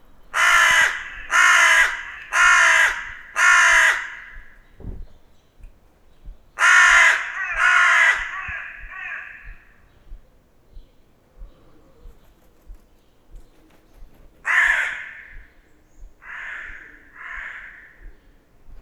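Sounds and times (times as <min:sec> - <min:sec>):
hooded crow Corvus cornix calling: 0:00.3 - 0:04.8, 0:06.6 - 0:10.2, 0:14.4 - 0:18.5.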